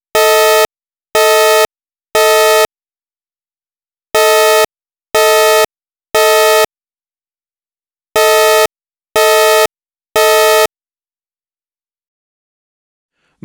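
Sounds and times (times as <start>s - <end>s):
evacuation alarm tone: 0.2s - 2.7s, 4.2s - 6.7s, 8.2s - 10.7s.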